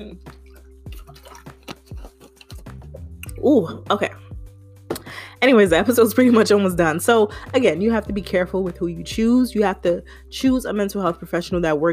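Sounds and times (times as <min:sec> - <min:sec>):
speech: 0:00.0 - 0:00.4, 0:03.4 - 0:04.2, 0:05.4 - 0:11.9
sipping and swallowing a drink of water: 0:00.0 - 0:03.5.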